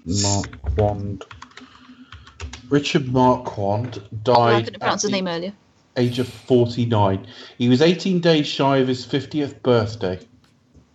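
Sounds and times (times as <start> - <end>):
speech: 0.1 - 1.4, 2.7 - 10.3
computer keyboard typing: 1.2 - 2.7
laughter: 2.8 - 5.3, 6.0 - 9.6
brief voiced sound: 4.3 - 5.2, 6.0 - 6.7.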